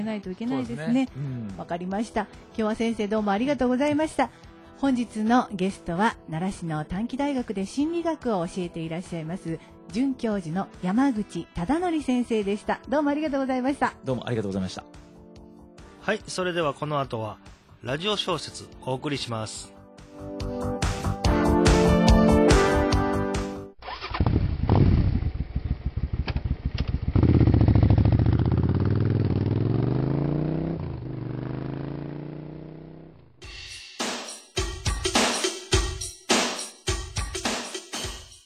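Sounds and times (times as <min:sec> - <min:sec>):
speech: 0:00.0 - 0:15.0, 0:16.0 - 0:20.4
music: 0:00.0 - 0:23.8, 0:33.4 - 0:38.4
motorcycle engine idling and revving: 0:23.8 - 0:33.4.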